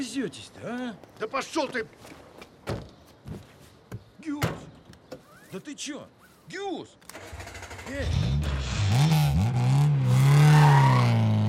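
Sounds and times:
speech: 0:00.0 - 0:02.2, 0:04.2 - 0:04.8, 0:05.5 - 0:09.0
car driving away with engine revving and accelerating: 0:07.2 - 0:11.4.

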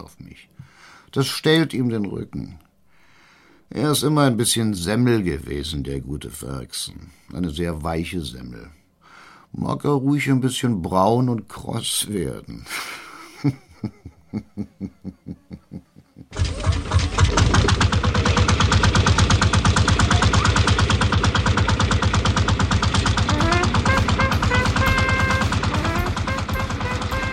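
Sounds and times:
speech: 0:00.0 - 0:02.6, 0:03.7 - 0:08.8, 0:09.5 - 0:17.2
laughter: 0:12.7 - 0:17.0
old Lanz Bulldog tractor engine warmed with a blowtorch starting up at a small circus: 0:16.3 - 0:27.3.

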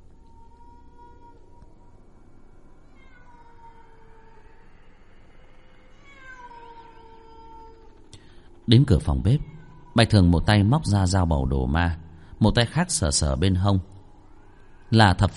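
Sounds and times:
steady low hiss: 0:00.0 - 0:15.3
pack of feral cats yowling outside: 0:00.2 - 0:11.4
speech: 0:08.7 - 0:13.9, 0:14.9 - 0:15.3.

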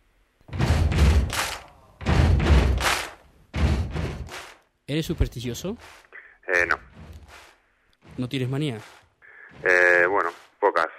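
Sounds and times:
basketball bouncing during free throws: 0:00.5 - 0:04.6
speech: 0:04.9 - 0:07.4, 0:08.2 - 0:10.9.

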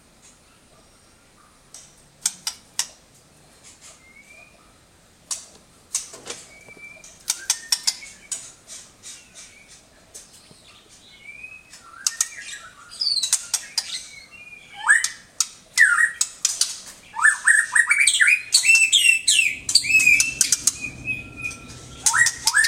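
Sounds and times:
Oriental magpie-robin song with clicks, chips, whistled and chattering phrases: 0:03.6 - 0:04.8, 0:05.9 - 0:22.6.

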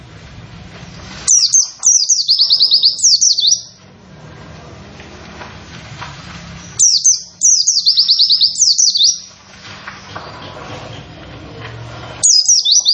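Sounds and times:
faint background noise: 0:00.0 - 0:12.9
white-eye singing rapid high thin chirps: 0:01.2 - 0:03.8, 0:06.7 - 0:09.4, 0:12.2 - 0:12.9.

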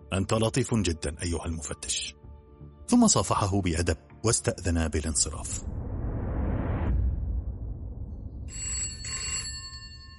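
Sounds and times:
speech: 0:00.1 - 0:02.2, 0:02.9 - 0:05.8
low whooshing rumble: 0:05.0 - 0:08.9
telephone bell ringing: 0:08.5 - 0:10.1.

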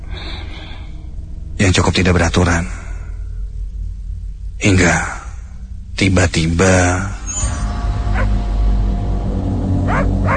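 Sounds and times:
heavy low rumble: 0:00.0 - 0:10.3
speech: 0:01.6 - 0:02.8, 0:04.6 - 0:05.2, 0:06.0 - 0:07.2
dog howling inside a tunnel: 0:09.9 - 0:10.3.

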